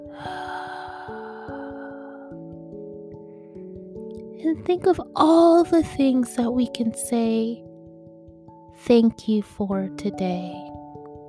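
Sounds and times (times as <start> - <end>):
deep slow breath in and out: 0.0 - 3.8
soft sustained musical tones: 0.0 - 11.2
speech: 4.4 - 7.7, 8.9 - 10.6.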